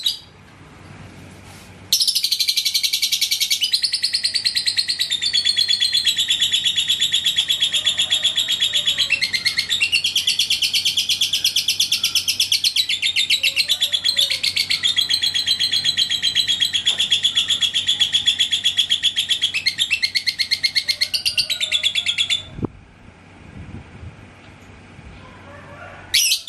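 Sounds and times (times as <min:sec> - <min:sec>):
lovebird chattering: 0:01.9 - 0:22.6.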